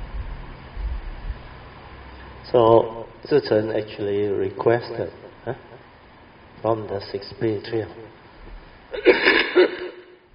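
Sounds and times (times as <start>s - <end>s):
speech: 2.5s - 5.7s, 6.6s - 8.2s
short rough cough: 8.9s - 10.2s.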